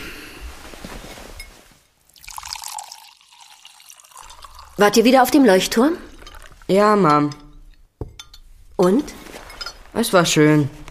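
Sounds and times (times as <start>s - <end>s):
water pouring into a glass: 2.1s - 6.8s
speech: 4.8s - 6.1s, 6.7s - 7.4s, 8.8s - 9.2s, 10.0s - 10.8s.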